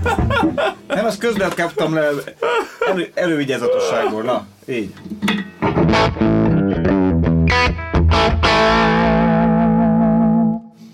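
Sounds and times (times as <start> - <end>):
laughter: 0.0 - 1.2
speech: 0.6 - 5.3
heavily distorted electric guitar through a diode amplifier: 5.6 - 10.8.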